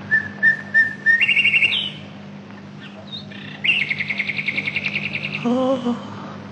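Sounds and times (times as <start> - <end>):
nightingale singing: 0.0 - 2.2, 2.8 - 5.8
steady low hum: 0.0 - 6.5
speech: 5.4 - 6.1.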